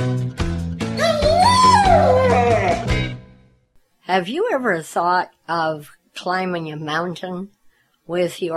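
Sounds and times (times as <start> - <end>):
dog howling: 1.0 - 3.0
speech: 4.2 - 8.5.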